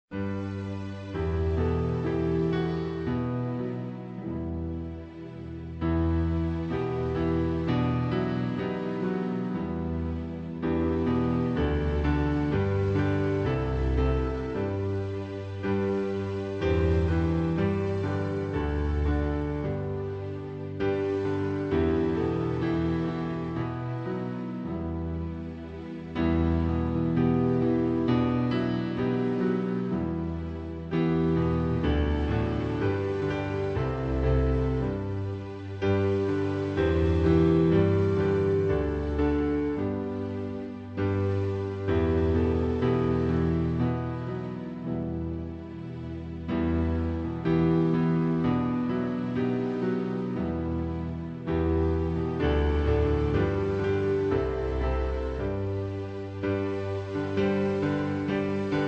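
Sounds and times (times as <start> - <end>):
instrumental hymn: 0.0 - 58.8.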